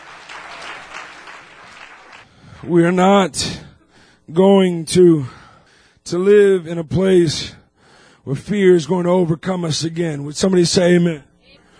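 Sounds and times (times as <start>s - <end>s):
audience at a religious gathering clapping hands: 0.0s - 2.7s
speech: 2.6s - 3.6s, 4.3s - 5.4s, 6.1s - 7.6s, 8.2s - 11.3s.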